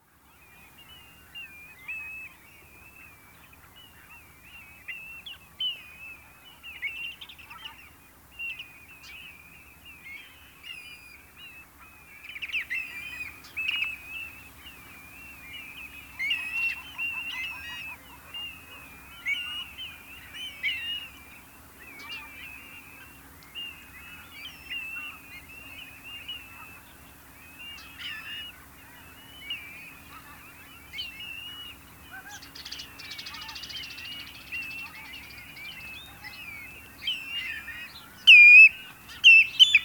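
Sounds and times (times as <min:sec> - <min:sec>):
redshank birdsong: 0:00.3 - 0:39.8.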